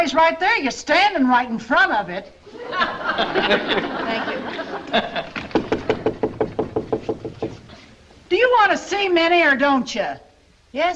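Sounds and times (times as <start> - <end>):
speech: 0.0 - 5.4, 8.3 - 10.9
laughter: 2.5 - 6.2
knocking on a wooden house door: 5.4 - 7.7.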